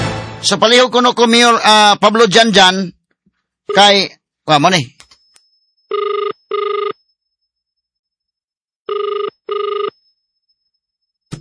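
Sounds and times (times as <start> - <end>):
speech: 0.4 - 3.0, 3.7 - 5.0
cellphone ringing with electronic tone bursts: 3.7 - 4.0, 5.8 - 7.2, 8.9 - 10.1.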